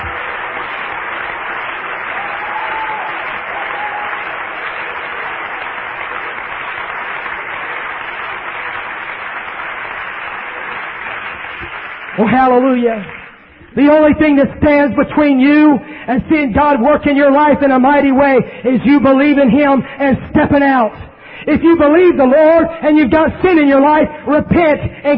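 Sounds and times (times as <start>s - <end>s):
audience applause: 0.0s - 13.7s
speech: 12.2s - 13.2s, 13.8s - 25.1s.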